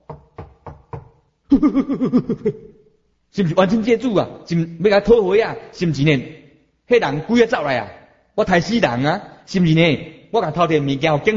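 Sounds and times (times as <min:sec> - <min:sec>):
crisp knocks on a door: 0:00.0 - 0:01.2
laughter: 0:01.5 - 0:02.7
speech: 0:01.5 - 0:11.3.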